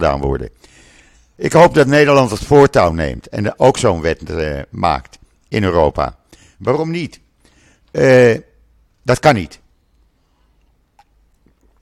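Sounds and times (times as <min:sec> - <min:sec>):
speech: 0:00.0 - 0:00.8, 0:01.4 - 0:07.2, 0:07.9 - 0:09.6
sip of water: 0:10.2 - 0:11.8
faint swallowing and mouth noises: 0:10.4 - 0:11.8.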